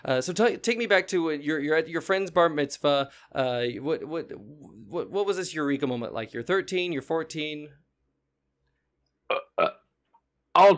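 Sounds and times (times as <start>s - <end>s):
speech: 0.0s - 7.8s, 9.6s - 9.8s, 10.6s - 10.7s
short throaty burps: 9.3s - 9.9s.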